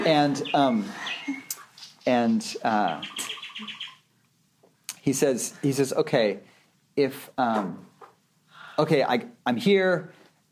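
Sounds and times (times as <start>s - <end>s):
speech: 0.0s - 1.4s, 2.1s - 3.8s, 5.0s - 7.9s, 8.8s - 10.2s
birds chirping: 0.0s - 4.2s.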